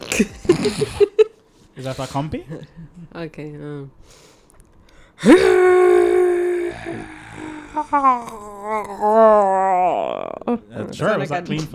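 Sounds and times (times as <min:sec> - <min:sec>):
speech: 0:00.2 - 0:01.1, 0:01.8 - 0:04.3, 0:05.2 - 0:06.2, 0:06.8 - 0:11.7
person imitating a dinosaur with a long strained roaring screech and warbling cry: 0:05.2 - 0:10.6.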